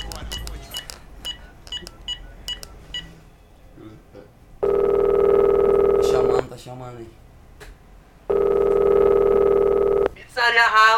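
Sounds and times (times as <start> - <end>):
person speaking: 0.0 - 2.8
telephone line tone while placing a call to order food delivery: 4.6 - 6.4, 8.3 - 10.1.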